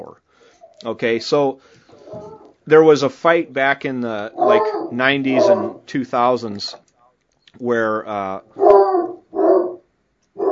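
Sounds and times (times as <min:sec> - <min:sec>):
speech: 0:00.0 - 0:06.8, 0:07.6 - 0:08.9
dog barking: 0:04.4 - 0:05.8, 0:08.6 - 0:09.8.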